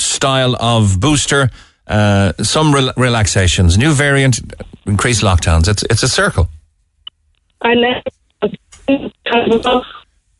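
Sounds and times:
speech: 0.2s - 6.6s, 7.6s - 10.0s
tinny narrow-band voice over a phone line breaking up: 7.6s - 10.0s.

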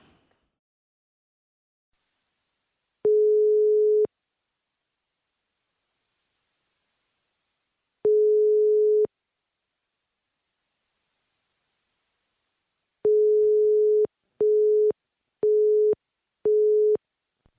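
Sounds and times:
telephone ringback tone: 3.1s - 4.1s, 8.1s - 9.1s, 13.1s - 17.0s.

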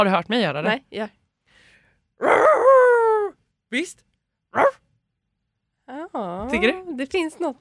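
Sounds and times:
speech: 0.0s - 1.2s, 2.2s - 2.8s, 3.7s - 4.8s, 5.9s - 7.5s
person imitating a dog with a drawn-out whiny vocal sound: 2.2s - 3.4s.

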